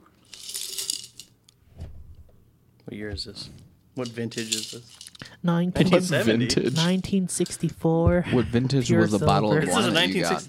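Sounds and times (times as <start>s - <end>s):
quarter coin dropping and clinking: 0.2s - 1.4s, 4.0s - 5.2s, 6.7s - 7.0s, 10.2s - 10.4s
speech: 2.9s - 10.4s.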